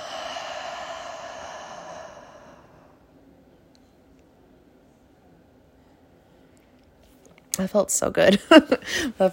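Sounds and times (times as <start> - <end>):
long steady breath out through the mouth: 0.0 - 3.1
speech: 7.6 - 9.3.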